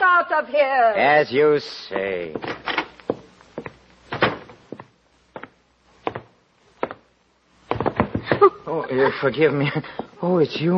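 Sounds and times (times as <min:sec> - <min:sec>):
speech: 0:00.2 - 0:02.8, 0:08.9 - 0:10.7
knocks and bumps: 0:02.3 - 0:08.6
wooden door shutting with a solid thud: 0:04.1 - 0:04.6.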